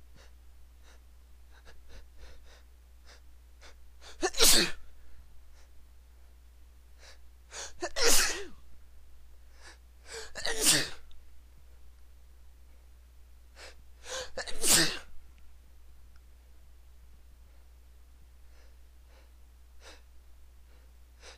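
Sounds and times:
man sneezing with buildups: 4.0s - 4.8s, 7.6s - 8.6s, 10.1s - 11.0s, 14.1s - 15.1s.

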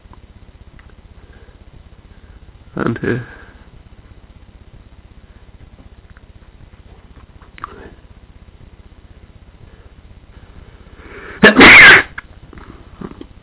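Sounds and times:
low steady hum: 0.0s - 13.4s
speech: 2.8s - 3.4s
loud sharp sneeze: 11.4s - 12.2s.

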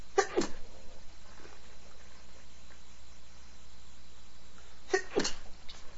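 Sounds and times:
man stifling sneezes: 0.2s - 0.8s, 4.9s - 5.8s.

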